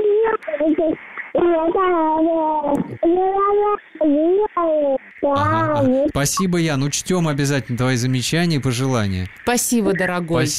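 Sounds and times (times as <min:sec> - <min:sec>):
baby babbling and whimpering: 0:00.0 - 0:06.2
speech: 0:00.6 - 0:04.4, 0:05.8 - 0:10.5.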